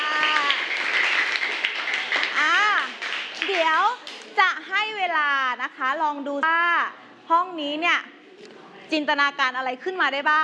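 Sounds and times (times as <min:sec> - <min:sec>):
audience applause: 0:00.0 - 0:04.4
speech: 0:05.5 - 0:10.4.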